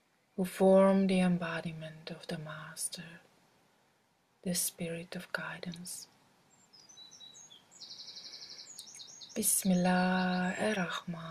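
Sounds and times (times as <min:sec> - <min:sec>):
speech: 0:00.4 - 0:03.3, 0:04.4 - 0:06.1, 0:09.4 - 0:11.2
bird singing high repeated chirps and trills: 0:06.5 - 0:11.2.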